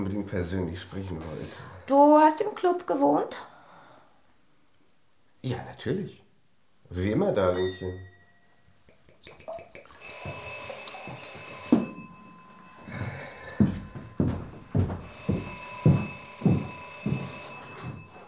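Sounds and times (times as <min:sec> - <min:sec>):
speech: 0:00.0 - 0:03.5, 0:05.4 - 0:06.2, 0:06.9 - 0:08.1
telephone bell ringing: 0:10.0 - 0:18.2
rhythmic low thuds: 0:12.8 - 0:17.9.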